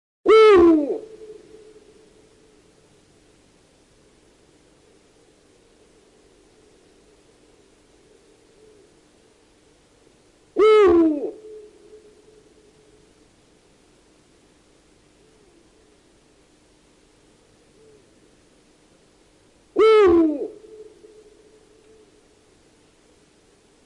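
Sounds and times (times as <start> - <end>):
Eurasian eagle-owl harsh call sliding down in pitch: 0.3 - 2.0, 10.6 - 12.5, 19.8 - 22.2.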